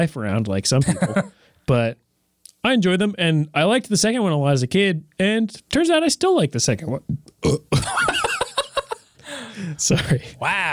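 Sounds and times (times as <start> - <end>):
speech: 0.0 - 2.0, 2.6 - 8.2, 9.6 - 10.7
laughter: 0.8 - 1.3, 7.8 - 10.4
loud burp after drinking water: 7.4 - 7.9.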